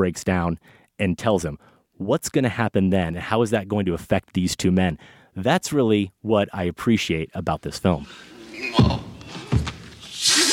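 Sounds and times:
speech: 0.0 - 9.0
head banging against a floor: 8.8 - 10.0.

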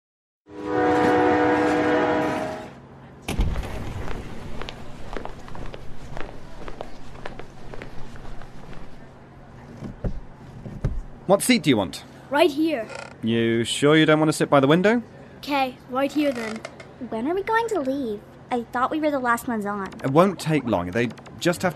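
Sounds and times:
loud sustained train horn: 0.5 - 2.8
speech: 11.3 - 21.7.

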